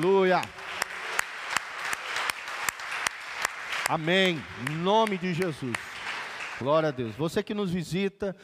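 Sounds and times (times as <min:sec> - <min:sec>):
speech: 0:00.0 - 0:00.6, 0:03.9 - 0:05.9, 0:06.6 - 0:08.4
audience applauding: 0:00.0 - 0:07.4.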